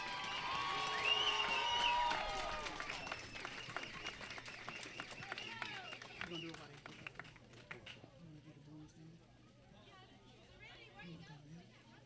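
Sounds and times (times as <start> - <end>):
large outdoor crowd applause and cheering for seniors on a field: 0.0 - 6.8
crowd whistles: 0.2 - 6.7
chatter from a large gathering outdoors: 2.0 - 12.0.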